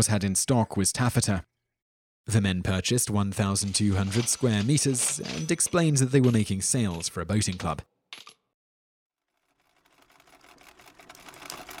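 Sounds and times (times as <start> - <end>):
speech: 0.0 - 1.6, 2.2 - 8.3
sewing machine running: 9.2 - 11.7.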